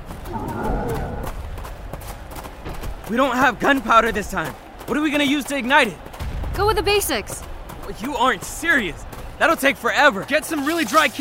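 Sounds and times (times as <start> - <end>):
horse giving a short wavering whinny: 0.3 - 1.3
speech: 3.1 - 6.0, 6.6 - 11.1.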